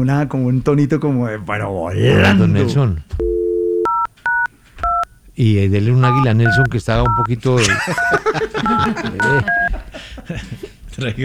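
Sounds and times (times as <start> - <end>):
speech: 0.0 - 3.2, 5.4 - 11.2
busy noise: 0.0 - 11.2
telephone keypad dialing tones as a call is transferred: 3.2 - 5.2, 6.0 - 7.3, 7.9 - 9.8
laughter: 6.0 - 11.2.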